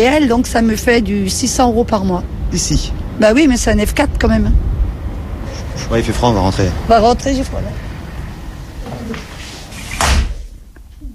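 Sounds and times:
speech: 0:00.0 - 0:04.7, 0:05.8 - 0:07.8
shuffling: 0:07.7 - 0:11.1
door rattle: 0:07.8 - 0:10.6
door slamming shut with a heavy booming thud: 0:08.8 - 0:10.6.

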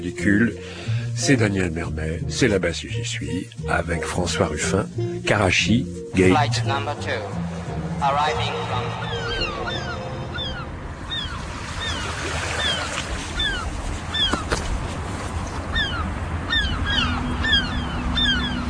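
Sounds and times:
speech: 0:00.0 - 0:09.2
wind by the shore: 0:00.0 - 0:18.6
several seagulls calling overhead: 0:06.2 - 0:14.8, 0:15.4 - 0:18.6
waves by the shore: 0:06.4 - 0:18.6.

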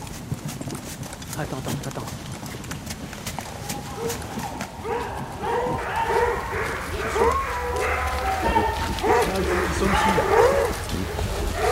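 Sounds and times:
speech: 0:01.4 - 0:02.3, 0:04.0 - 0:07.4, 0:09.0 - 0:10.8
hunting dogs barking and yelping through the trees during a chase: 0:03.7 - 0:11.7.

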